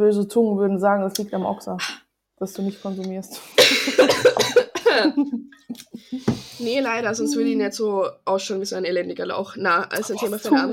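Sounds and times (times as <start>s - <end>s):
speech: 0.0s - 10.7s
person coughing: 3.5s - 5.2s.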